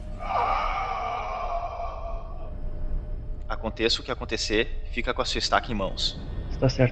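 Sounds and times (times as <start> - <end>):
heavy labored raspy wheezing breathing: 0.2 - 3.4
speech: 3.6 - 6.9.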